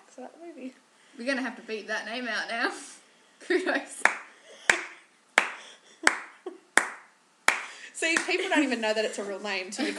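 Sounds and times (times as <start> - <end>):
speech: 0.2 - 4.2, 8.0 - 9.9
sharp hand claps: 4.0 - 8.4.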